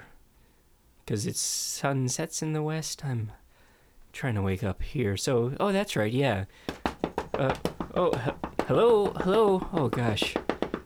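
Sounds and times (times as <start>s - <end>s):
speech: 1.1s - 3.4s, 4.2s - 6.8s, 7.4s - 10.4s
sharp knocks on the door of a house: 6.7s - 10.8s.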